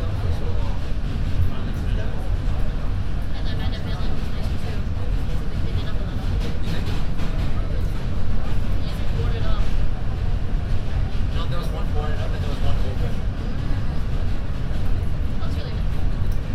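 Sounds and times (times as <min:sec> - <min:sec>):
moving subway train rumble and rattle: 0:00.0 - 0:16.5.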